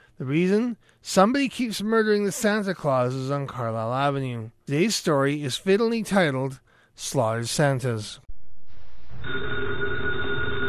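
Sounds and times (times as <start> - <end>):
speech: 0.2 - 8.2, 9.2 - 10.0
old telephone bell ringing in an office: 9.2 - 10.6.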